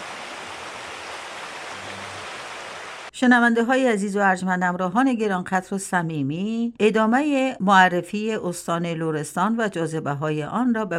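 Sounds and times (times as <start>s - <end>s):
flowing river water rushing: 0.0s - 3.1s
speech: 3.2s - 10.9s.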